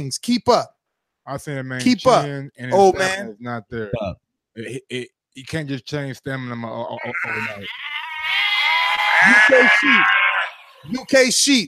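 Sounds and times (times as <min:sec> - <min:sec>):
speech: 0:00.0 - 0:08.5, 0:09.2 - 0:10.2, 0:10.8 - 0:11.6
sheep bleating: 0:07.0 - 0:10.9.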